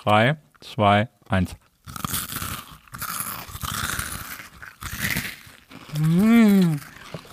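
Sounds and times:
speech: 0.0 - 2.1, 6.0 - 6.9
crunchy chewing of a salty hearty snack: 1.6 - 7.3
person humming a murmur of enjoyment: 5.9 - 7.0.

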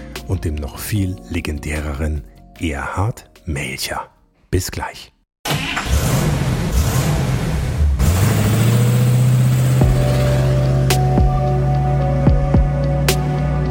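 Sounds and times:
speech: 0.3 - 5.2
car engine revving and roaring in a podcast intro jingle: 5.5 - 13.6.

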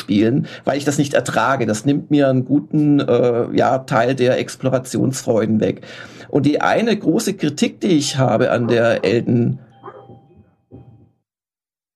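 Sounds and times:
speech: 0.1 - 9.7
dog barking: 8.6 - 9.2, 9.8 - 10.4.

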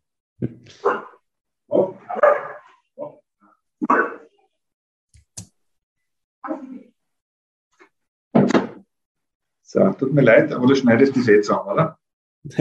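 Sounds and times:
speech: 0.4 - 1.1, 9.7 - 12.5
Australian Shepherd dog barking: 0.8 - 1.2, 2.1 - 2.8.

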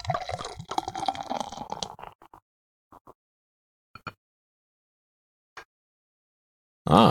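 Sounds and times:
drink pouring into a glass: 0.0 - 2.2.

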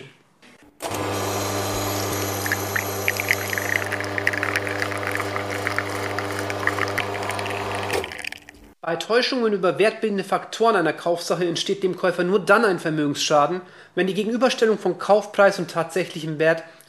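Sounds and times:
coffee machine pump drone: 0.8 - 8.6
coffee with crema trickling into a coffee cup: 1.8 - 8.8
speech: 8.9 - 16.8.

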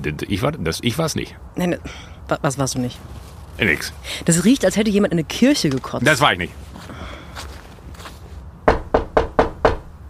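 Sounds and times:
speech: 0.0 - 6.7
loud sharp knocking on a door: 8.7 - 9.9.

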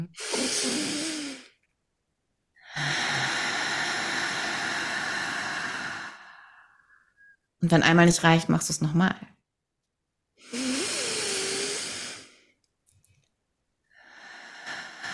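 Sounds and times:
slow deep breath with breathy inhale and long exhale: 0.2 - 1.6, 2.6 - 7.5, 10.4 - 12.6, 13.9 - 15.1
speech: 7.6 - 9.4.

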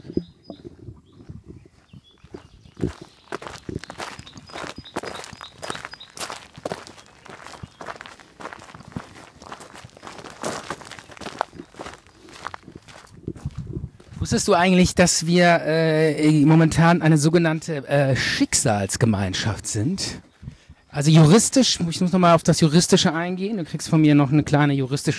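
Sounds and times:
footsteps on a wide gravel path: 1.2 - 14.4
speech: 14.3 - 20.3, 21.0 - 25.1.

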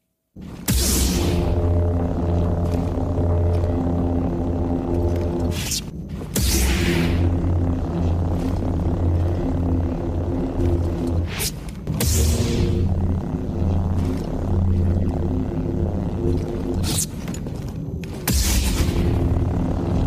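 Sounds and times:
ignited lightsaber electric hum sound effect: 0.4 - 20.0.

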